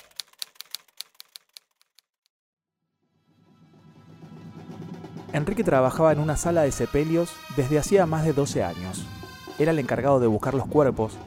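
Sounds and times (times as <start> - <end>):
typewriter keystrokes: 0.0 - 2.0
speech: 5.3 - 11.2.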